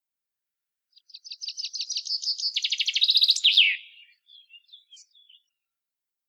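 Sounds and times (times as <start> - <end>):
common chaffinch Fringilla coelebs singing: 0.9 - 5.7.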